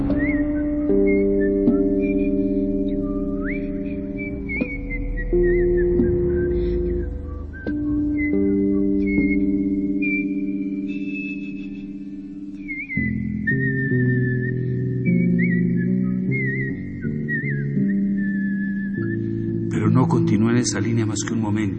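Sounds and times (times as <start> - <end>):
person whistling a wavering melody: 0.0 - 20.4
low sustained instrumental tones: 0.0 - 21.7
speech: 20.6 - 21.7.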